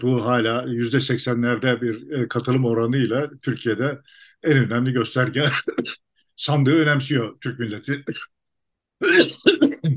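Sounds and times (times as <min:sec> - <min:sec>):
laughter: 0:00.0 - 0:06.0, 0:09.0 - 0:09.9
speech: 0:00.0 - 0:08.4, 0:09.0 - 0:09.9
throat clearing: 0:05.2 - 0:06.0, 0:09.0 - 0:09.9
harsh coughing: 0:05.4 - 0:06.0, 0:09.0 - 0:09.9.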